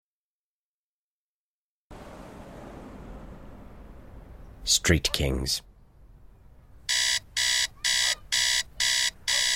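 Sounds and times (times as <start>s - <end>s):
speech: 4.7s - 5.7s
alarm clock ringing with sharp harsh electronic beeps: 6.9s - 9.5s.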